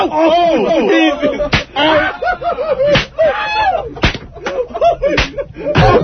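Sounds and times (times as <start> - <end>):
people talking and laughing: 0.0 - 6.0
whip cracking: 4.0 - 4.2, 5.2 - 5.4.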